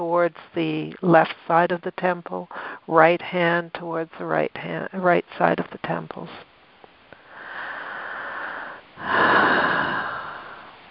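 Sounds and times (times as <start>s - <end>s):
speech: 0.1s - 6.5s, 9.0s - 9.8s
deep breathing in and out: 7.2s - 10.8s.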